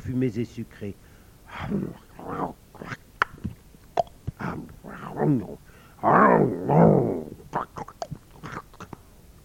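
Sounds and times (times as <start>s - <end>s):
speech: 0.1s - 3.0s, 4.4s - 7.9s
wolf snarling loudly: 1.6s - 3.0s, 4.4s - 9.0s
wolves growling while eating potatoes, soaked bread and sweet flatcakes: 4.4s - 7.4s.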